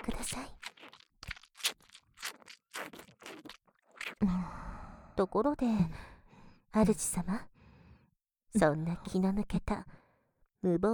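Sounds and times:
wet sticky chewing mouth sounds: 0.0 - 4.2
speech: 0.3 - 0.6, 4.2 - 4.6, 5.2 - 6.0, 6.8 - 7.5, 8.5 - 10.0, 10.6 - 10.9.

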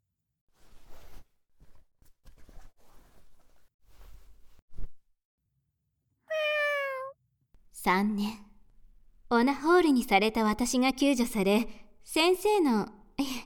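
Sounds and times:
cat meowing: 6.3 - 7.1
speech: 7.8 - 8.4, 9.4 - 13.3.

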